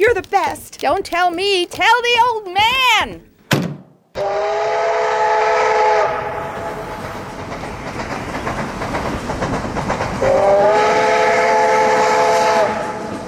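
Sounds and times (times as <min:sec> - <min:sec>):
speech: 0:00.0 - 0:03.3, 0:04.2 - 0:04.9
train horn chord-like blasts: 0:04.2 - 0:07.0, 0:10.2 - 0:13.1
train travelling from Sacramento to San Francisco rumbling and clattering on rails: 0:04.9 - 0:13.2.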